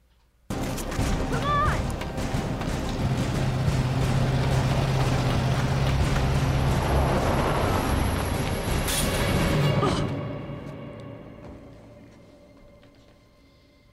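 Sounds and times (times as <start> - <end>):
truck engine roaring in a political campaign ad: 0.5 - 10.0.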